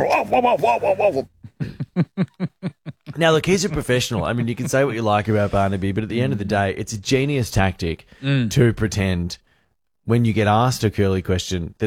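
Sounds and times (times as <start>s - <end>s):
man imitating his own dog barking during an interview: 0.0s - 1.3s
speech: 0.0s - 1.3s, 2.0s - 9.4s, 10.1s - 11.8s
laughter: 0.0s - 5.2s.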